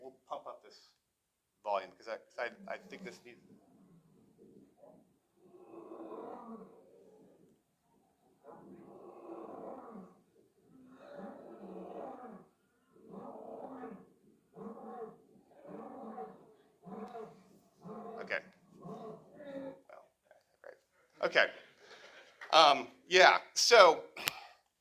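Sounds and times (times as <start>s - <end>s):
speech: 1.8s - 3.7s, 22.7s - 24.0s
lion roaring from a video: 2.4s - 20.0s.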